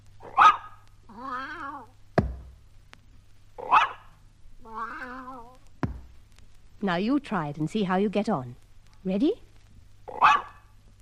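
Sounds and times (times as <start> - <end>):
dog barking: 0.2 - 0.8, 3.6 - 4.1, 10.1 - 10.7
cat meowing: 1.1 - 1.9, 4.6 - 5.6
hand patting the floor: 5.8 - 6.2
speech: 6.8 - 9.4.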